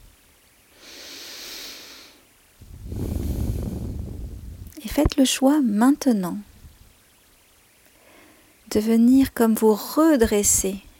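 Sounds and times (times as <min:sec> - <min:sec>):
deep breath in through the nose and out: 0:00.7 - 0:04.5
speech: 0:05.0 - 0:06.5, 0:08.8 - 0:10.9.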